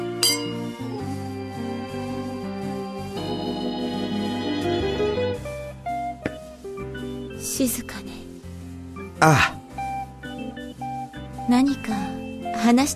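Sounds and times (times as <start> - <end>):
steady sustained music: 0.0 - 12.9
glasses clinking in a Christmas toast: 0.2 - 0.7
speech: 7.6 - 8.1, 9.2 - 9.6, 11.5 - 12.9.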